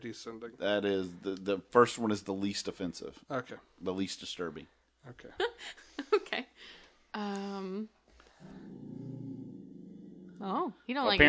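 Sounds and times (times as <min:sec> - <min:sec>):
speech: 0:00.0 - 0:06.1, 0:07.1 - 0:08.8, 0:10.4 - 0:11.2
dog growling low and rumbling: 0:08.4 - 0:10.6.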